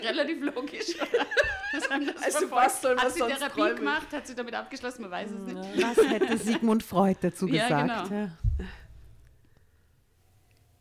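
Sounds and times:
speech: 0.0 - 8.8
faint noise: 0.0 - 10.7
laughter: 0.4 - 3.9, 5.5 - 8.1
low thump: 8.4 - 9.2.

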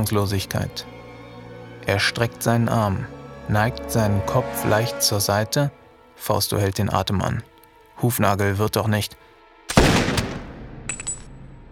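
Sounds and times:
speech: 0.0 - 0.9, 1.8 - 9.2
single loud gunshot with tail in a ruin: 9.7 - 11.0.

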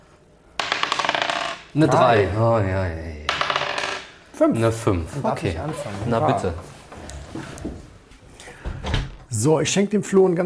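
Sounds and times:
dice clattering on a hard table: 0.6 - 2.0, 3.3 - 4.2
speech: 1.7 - 3.2, 4.4 - 6.7, 7.3 - 7.8, 9.3 - 10.4.

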